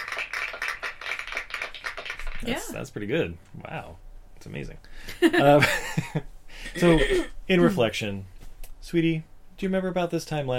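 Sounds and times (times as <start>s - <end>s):
rhythmic clapping: 0.0s - 2.8s
speech: 2.4s - 10.5s.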